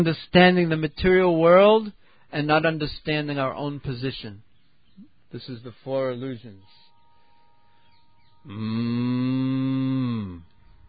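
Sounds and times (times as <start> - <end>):
speech: 0.0 - 4.4, 5.0 - 6.8, 8.4 - 10.5
cow mooing: 8.4 - 10.8.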